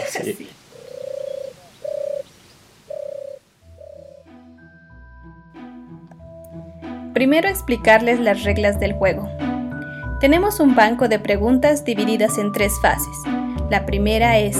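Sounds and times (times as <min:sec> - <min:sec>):
speech: 0:00.2 - 0:00.6, 0:07.2 - 0:09.4, 0:10.2 - 0:14.5
pigeon cooing: 0:00.7 - 0:04.3
musical tones: 0:03.6 - 0:13.9.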